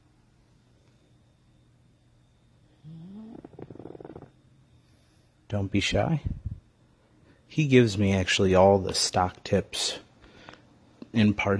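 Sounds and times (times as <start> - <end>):
pug snoring with nasal grunts and rattling snorts: 2.7 - 4.4
speech: 5.5 - 6.3, 7.6 - 10.0, 11.1 - 11.5.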